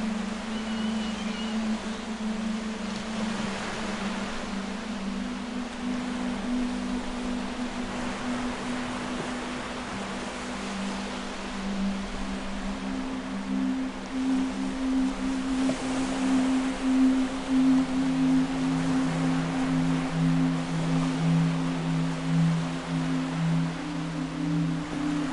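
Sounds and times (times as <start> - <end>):
ocean waves: 0.0 - 25.3
slow sustained low drone tones: 0.0 - 25.3.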